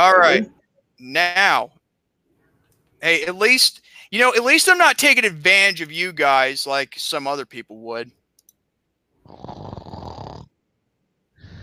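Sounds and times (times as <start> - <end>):
speech: 0.3 - 1.8, 3.0 - 8.2
person snoring loudly: 9.2 - 10.5, 11.4 - 11.6.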